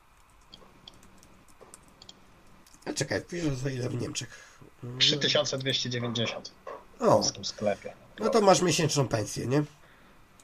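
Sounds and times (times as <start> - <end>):
quiet hum: 0.0 - 10.4
computer mouse clicking: 0.2 - 2.9
speech: 3.0 - 9.8.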